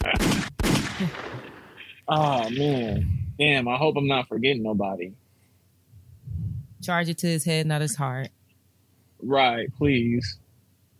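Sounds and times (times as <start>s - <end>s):
booming gunshot sound effects with decay: 0.0s - 1.9s
speech: 2.1s - 5.2s, 6.8s - 8.4s, 9.2s - 10.4s.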